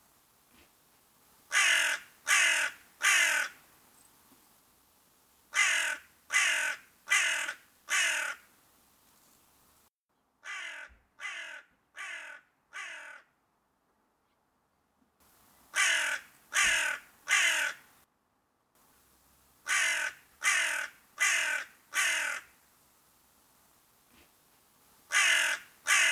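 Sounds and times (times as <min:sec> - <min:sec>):
crow cawing: 0:01.5 - 0:03.6, 0:05.5 - 0:08.5, 0:10.4 - 0:13.4, 0:15.7 - 0:17.9, 0:19.6 - 0:22.6, 0:25.1 - 0:26.1.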